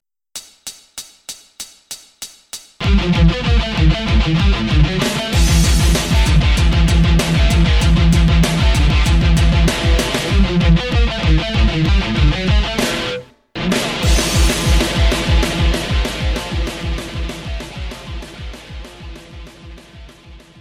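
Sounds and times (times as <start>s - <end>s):
thrash metal lead guitar: 2.8s - 20.5s.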